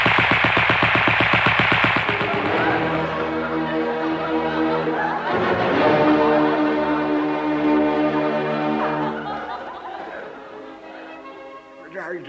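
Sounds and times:
firing squad gunfire in a radio comedy: 0.0s - 3.3s
laughter: 2.0s - 12.2s.

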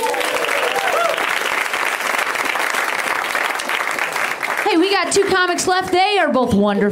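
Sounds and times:
faint cheers: 0.0s - 1.5s
crowd applauding: 0.0s - 6.1s
speech: 5.1s - 6.9s.

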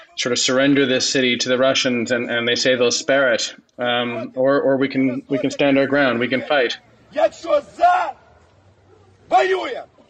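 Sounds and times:
speech: 0.2s - 8.2s, 9.3s - 9.9s
crowd shouting back in unison: 5.1s - 9.9s.

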